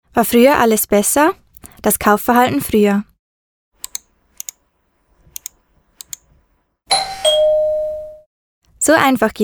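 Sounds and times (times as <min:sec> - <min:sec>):
speech: 0:00.2 - 0:03.1, 0:08.9 - 0:09.4
sharp mouse clicks while shopping online: 0:03.8 - 0:04.6, 0:05.2 - 0:06.4
quick key taps: 0:03.8 - 0:06.5
loud two-tone doorbell chime: 0:06.9 - 0:08.3.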